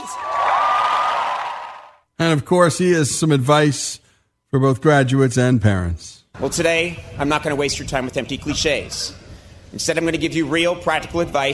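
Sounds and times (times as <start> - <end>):
large graduation crowd applause at commencement ceremony: 0.0 - 2.0
speech: 2.2 - 11.5.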